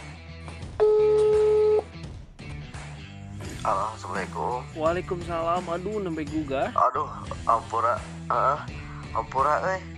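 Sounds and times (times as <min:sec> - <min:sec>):
electronic telephone ringback tone of an outgoing call: 0:00.8 - 0:01.9
speech: 0:03.6 - 0:09.9.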